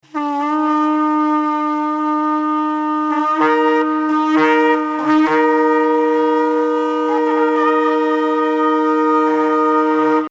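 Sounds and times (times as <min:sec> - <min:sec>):
double stacked shofar call: 0:00.0 - 0:10.2.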